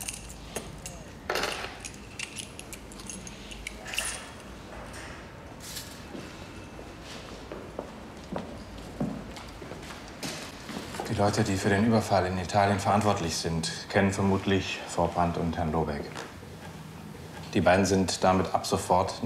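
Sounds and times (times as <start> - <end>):
keys jangling as they are handed over: 0.0 - 4.6
speech: 11.2 - 16.2, 17.5 - 19.2.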